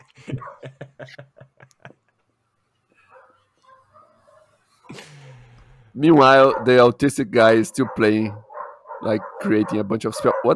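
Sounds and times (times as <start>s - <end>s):
laughter: 0.0s - 2.4s, 4.9s - 5.9s
dogs barking sharply: 0.3s - 0.8s, 3.1s - 4.6s, 6.2s - 10.5s
speech: 1.0s - 1.3s, 6.0s - 8.4s, 9.0s - 10.5s
burst of noise: 4.9s - 6.0s.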